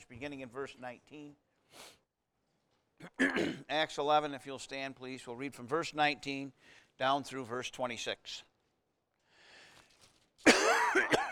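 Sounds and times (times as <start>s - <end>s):
speech: 0.1s - 1.9s, 3.0s - 8.5s
person coughing: 3.0s - 3.7s, 10.5s - 11.3s.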